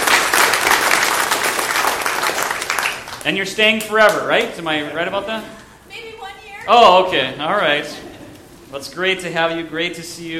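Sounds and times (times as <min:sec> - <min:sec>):
church service audience applauding: 0:00.0 - 0:03.4
speech: 0:03.2 - 0:05.6, 0:06.6 - 0:08.1, 0:08.7 - 0:10.3.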